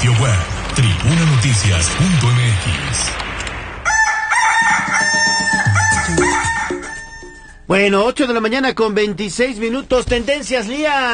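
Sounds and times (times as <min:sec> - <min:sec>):
speech: 0:00.4 - 0:03.2, 0:07.7 - 0:11.1
rooster crowing: 0:03.8 - 0:07.6.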